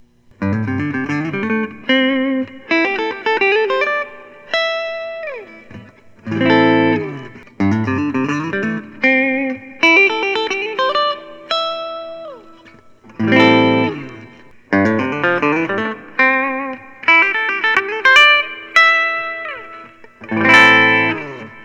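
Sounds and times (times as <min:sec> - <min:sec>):
Collings SoCo Deluxe amber sunburst guitar: 0:00.0 - 0:21.6.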